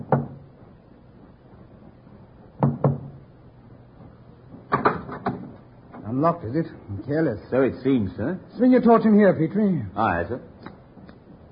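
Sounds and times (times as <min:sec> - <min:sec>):
soft knocking on a wooden cabin door: 0:00.0 - 0:00.4, 0:02.6 - 0:03.2
speech: 0:06.2 - 0:10.5.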